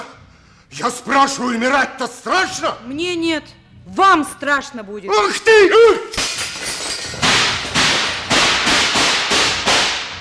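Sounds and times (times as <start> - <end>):
speech: 0.7 - 6.3
gunshots fired in a prison: 7.2 - 10.1.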